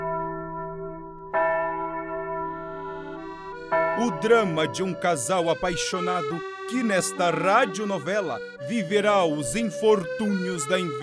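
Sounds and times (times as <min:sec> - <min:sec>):
church bells tolling with a deep sustained ring: 0:00.0 - 0:08.6
speech: 0:04.0 - 0:11.0.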